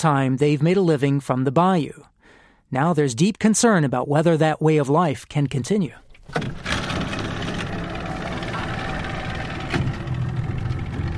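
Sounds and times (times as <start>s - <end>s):
speech: 0.0s - 2.1s, 2.7s - 6.7s
small boat engine idling at a landing in a bayou village: 6.0s - 11.1s
low rumbling drone: 6.4s - 11.1s.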